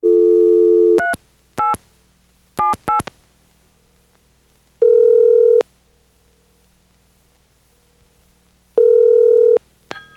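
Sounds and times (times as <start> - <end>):
phone line dial tone hum: 0.0 - 1.7, 4.8 - 5.6, 8.8 - 9.6.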